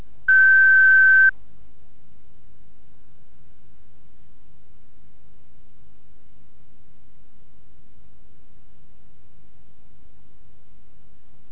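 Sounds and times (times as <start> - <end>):
college switchboard answering system electronic beep: 0.3 - 1.3.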